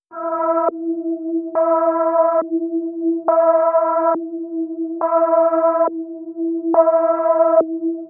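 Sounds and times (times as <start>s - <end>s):
synth with LFO-modulated filter: 0.1s - 8.0s.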